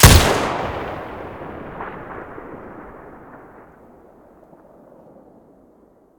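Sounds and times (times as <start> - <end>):
weapon muzzle blasts: 0.0 - 2.9.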